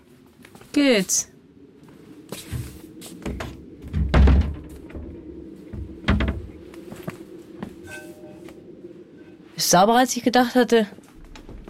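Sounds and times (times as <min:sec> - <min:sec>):
speech: 0:00.8 - 0:01.3, 0:09.7 - 0:11.0
heavy thuds of a door: 0:02.4 - 0:07.8
door swinging shut in cold weather: 0:11.3 - 0:11.6.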